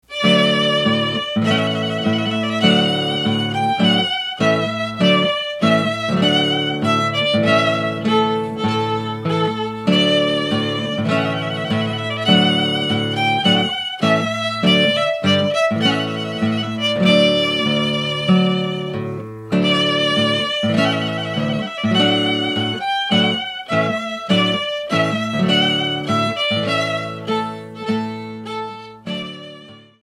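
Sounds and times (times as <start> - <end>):
guitar: 0.0 - 30.0
violin: 0.0 - 30.0.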